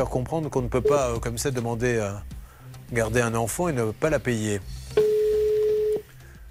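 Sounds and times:
speech: 0.0 - 5.0
telephone ringing tone on an outgoing call to a mobile phone: 5.0 - 6.0.

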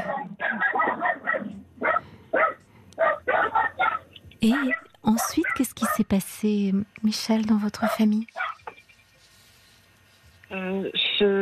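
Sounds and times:
small dogs yapping and barking in a scuffle: 0.0 - 6.1, 7.9 - 8.9
speech: 4.4 - 8.4.

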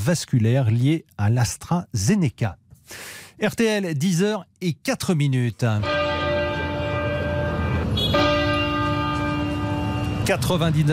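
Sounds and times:
speech: 0.0 - 6.0, 10.3 - 10.9
cathedral bells tolling in tribute: 5.8 - 10.9.

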